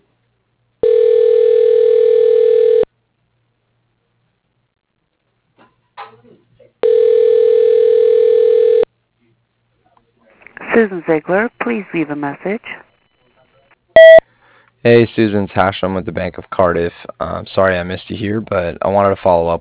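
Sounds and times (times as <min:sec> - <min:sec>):
ringback tone on an outgoing telephone call: 0:00.8 - 0:02.9, 0:06.8 - 0:08.9
speech: 0:10.8 - 0:12.8, 0:14.8 - 0:19.5.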